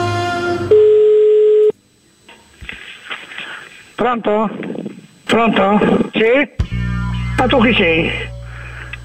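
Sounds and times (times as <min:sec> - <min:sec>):
buzzing harmonic-rich telephone call tone as a call is placed: 0:00.2 - 0:01.8, 0:05.4 - 0:09.0
pure single telephone tone: 0:00.7 - 0:01.8
speech: 0:04.0 - 0:06.7, 0:07.4 - 0:08.3.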